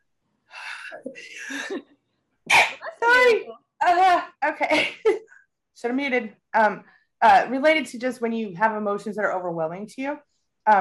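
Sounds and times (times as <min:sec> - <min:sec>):
speech: 0:00.9 - 0:10.7
person sneezing: 0:02.5 - 0:03.0.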